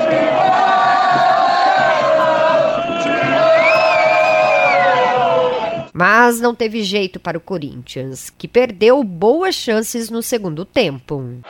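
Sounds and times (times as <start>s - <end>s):
large football crowd roaring and cheering after a goal: 0.0s - 6.0s
speech: 6.0s - 11.4s.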